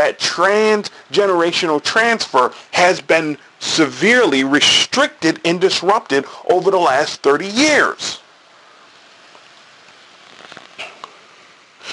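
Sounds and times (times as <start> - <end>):
speech: 0.0 - 8.2
rain falling outside through open windows: 0.0 - 11.9
faint patters and drips of rain: 9.3 - 11.2.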